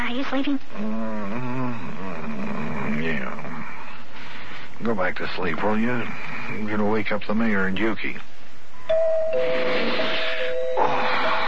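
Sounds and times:
speech: 0.2 - 3.5, 4.8 - 8.3
doorbell with sustained electric buzzing tone: 8.9 - 11.4
broadband noise: 9.4 - 11.4.

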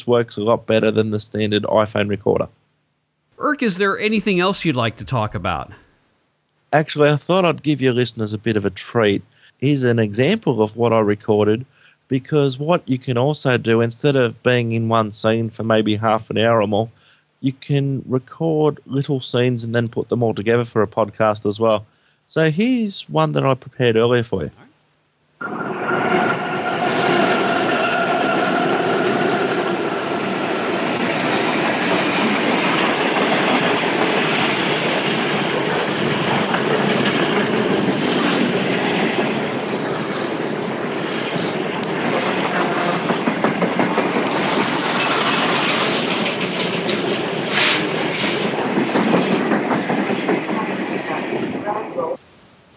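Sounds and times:
speech: 0.0 - 2.6, 3.4 - 5.8, 6.7 - 24.7, 25.4 - 26.0
freight train passing a station: 25.4 - 52.2.

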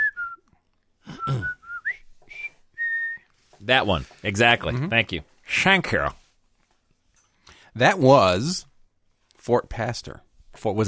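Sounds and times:
person whistling a march tune: 0.0 - 3.3
speech: 1.3 - 1.6, 3.7 - 6.2, 7.8 - 8.7, 9.4 - 10.8.

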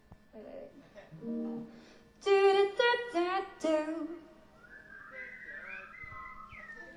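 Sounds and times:
faint noise: 0.0 - 6.9
person whistling shakily trying to whistle back a song melody: 4.5 - 6.9.

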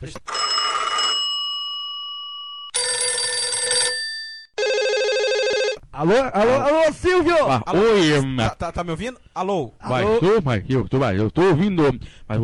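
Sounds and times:
speech: 0.0 - 0.4, 6.0 - 12.4
mobile phone ringing with an electronic ringtone: 0.3 - 5.8.

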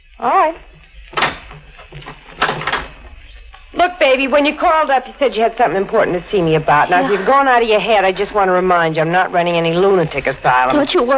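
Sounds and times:
speech: 0.2 - 0.7, 3.9 - 11.1
door closing with a thud: 1.1 - 3.1.

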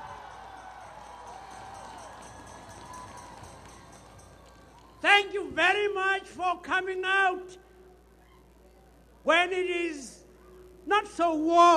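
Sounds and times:
crowd clapping hands: 0.0 - 5.0
speech: 5.1 - 7.6, 9.2 - 10.2, 10.9 - 11.7
faint murmur of voices: 7.8 - 9.3.

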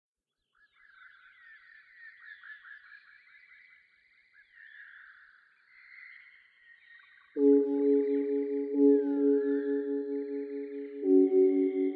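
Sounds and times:
Eurasian skylark singing: 7.4 - 11.9.

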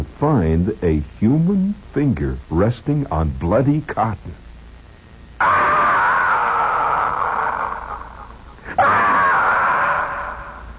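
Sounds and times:
speech: 0.2 - 4.4
long loud high-pitched screams: 5.4 - 10.7.

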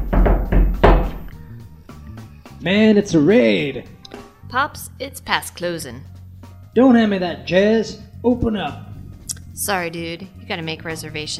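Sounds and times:
hairy knuckles knocking a paradiddle on a house door: 0.0 - 1.3
speech: 2.6 - 6.2, 6.8 - 8.9, 9.6 - 11.3.

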